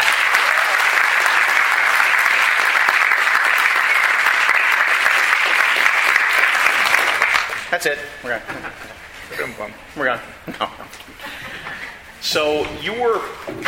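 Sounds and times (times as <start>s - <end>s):
audience applause welcoming a guest: 0.0s - 7.7s
speech: 7.7s - 11.5s, 12.2s - 13.6s
laughter: 8.2s - 9.8s, 10.5s - 12.1s.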